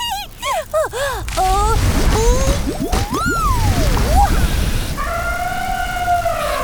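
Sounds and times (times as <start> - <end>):
rumbling busy background: 0.0 - 6.6
cartoon water elephants trumpeting in a chorus: 1.4 - 6.6.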